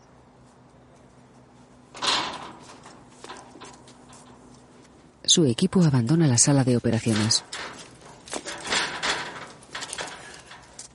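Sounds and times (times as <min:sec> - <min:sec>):
shipping container door opening with a clunk: 0:01.9 - 0:04.4, 0:07.1 - 0:10.9
speech: 0:05.3 - 0:07.7.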